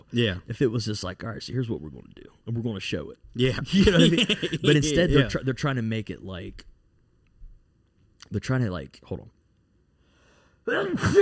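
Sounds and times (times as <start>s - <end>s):
speech: 0.1s - 6.7s, 8.3s - 9.4s, 10.7s - 11.1s
laughter: 3.6s - 5.3s
sneeze: 10.7s - 11.1s.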